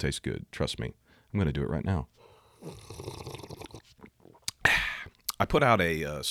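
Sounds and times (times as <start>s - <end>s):
speech: 0.0s - 3.5s, 5.4s - 6.2s
person slurping hot coffee: 2.6s - 5.2s
low gurgling mouth noises: 2.6s - 5.4s.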